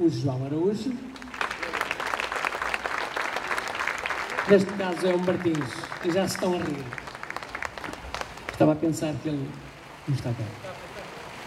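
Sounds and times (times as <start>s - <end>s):
speech: 0.0s - 1.3s, 4.5s - 7.0s, 8.6s - 10.8s
audience applause at a fado concert: 1.2s - 8.8s.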